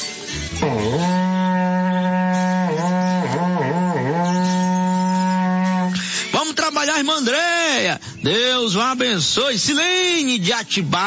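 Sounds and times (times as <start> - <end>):
berrante cattle horn being blown: 0.3 - 6.3
speech: 7.0 - 11.0.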